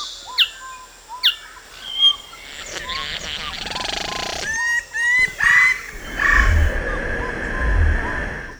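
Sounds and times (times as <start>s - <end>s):
rainforest birds: 0.4s - 8.5s.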